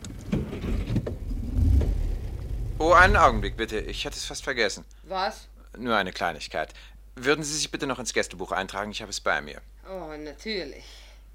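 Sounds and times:
car engine rumble as the vehicle pulls away: 0.4 - 4.7
speech: 2.8 - 11.0.

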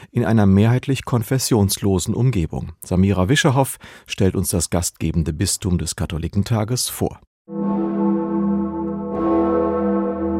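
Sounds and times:
speech: 0.2 - 7.7
large medieval free-swinging church bell ringing in Erfurt Germany: 7.6 - 10.3.

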